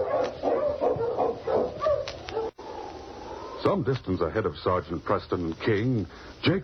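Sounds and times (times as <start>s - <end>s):
husky sled dog barking and yipping: 0.0s - 3.6s
speech: 3.6s - 6.6s.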